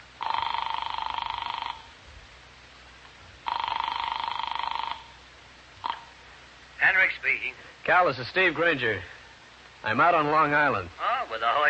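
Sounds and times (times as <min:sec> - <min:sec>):
low hiss: 0:00.0 - 0:11.6
long-distance telephone call ringing: 0:00.2 - 0:01.9, 0:03.5 - 0:05.1
speech: 0:07.2 - 0:09.2, 0:09.8 - 0:11.6.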